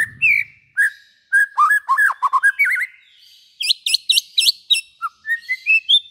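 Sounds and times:
white-rumped shama singing whistled notes, buzzy trills and slurred notes: 0.0 - 6.0.

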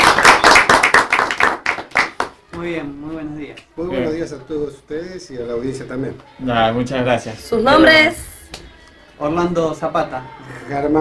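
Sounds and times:
few people clapping in a radio studio: 0.0 - 2.8
speech: 2.6 - 11.0.

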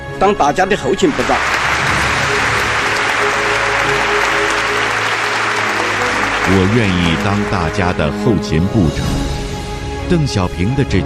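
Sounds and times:
speech: 0.2 - 1.6, 6.5 - 9.3, 10.1 - 11.0
large audience applauding after a speech: 0.8 - 8.8.

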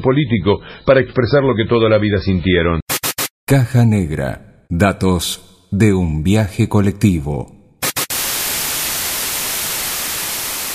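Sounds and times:
speech: 0.0 - 2.8, 3.5 - 7.6
steady broadband white noise: 7.9 - 10.7.

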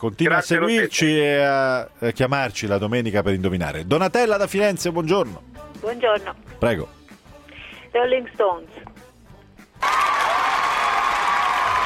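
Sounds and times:
speech: 0.0 - 7.0, 7.9 - 9.0
applause sound effect for a correct answer in a phone-in quiz game: 9.8 - 11.8.

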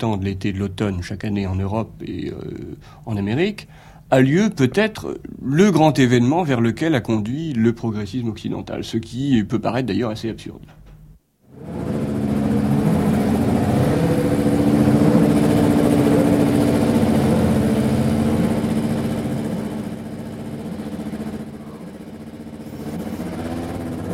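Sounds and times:
speech: 0.0 - 10.8
Renault Formula 1 qualifying engine running steadily while being tuned: 11.5 - 24.1.

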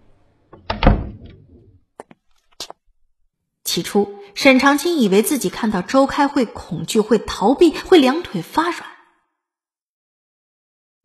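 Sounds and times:
hospital ward door pushed open with a thud: 0.6 - 1.7
speech: 3.7 - 8.9.

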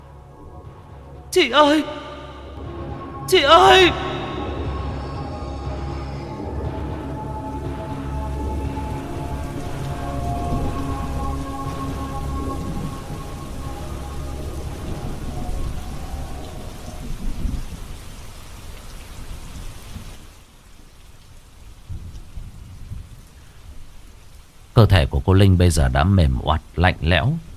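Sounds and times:
low thunderstorm rumbling: 0.0 - 18.1
heavy rain pouring down in a thunderstorm: 0.0 - 27.5
speech: 1.3 - 2.0, 3.3 - 4.1, 24.8 - 27.5.

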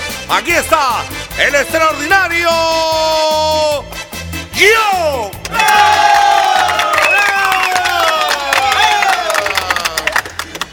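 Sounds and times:
speech: 0.3 - 4.0, 4.6 - 6.3
audience cheering and shouting at a live comedy show: 5.4 - 10.1
audience applauding at a live comedy show: 5.5 - 10.7.

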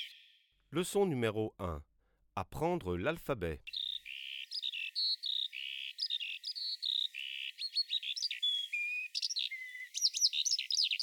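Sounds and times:
skylark song: 0.0 - 0.5, 3.6 - 11.0
speech: 0.7 - 3.8.

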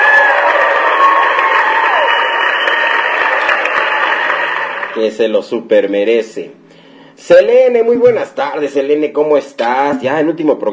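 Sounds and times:
audience applause on a call-in program: 0.0 - 5.0
speech: 5.0 - 6.6, 7.2 - 10.7.

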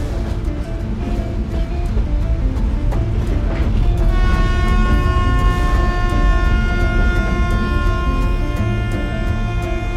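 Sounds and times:
diesel shunting locomotive hauling gondola cars: 0.0 - 9.9.

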